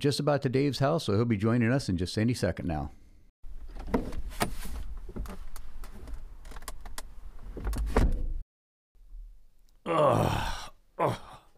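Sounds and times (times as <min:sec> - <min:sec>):
speech: 0:00.0 - 0:03.0
rustling and thumps of someone climbing into a car: 0:03.5 - 0:08.4
person groaning in pain: 0:09.8 - 0:11.5
person sighing heavily: 0:09.8 - 0:11.5.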